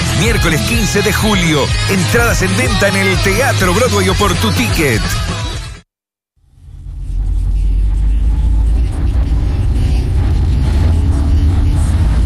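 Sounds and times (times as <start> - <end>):
speech: 0.2 - 5.4
car engine rumble heard from inside the cabin: 6.4 - 12.2.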